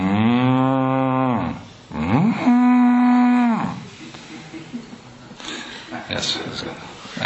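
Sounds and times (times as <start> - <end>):
cow mooing while waiting to be milked: 0.0 - 3.9.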